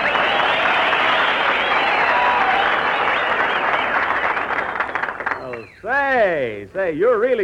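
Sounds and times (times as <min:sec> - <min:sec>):
large studio audience applause: 0:00.0 - 0:05.8
whistles: 0:00.0 - 0:05.9
speech: 0:06.7 - 0:07.4.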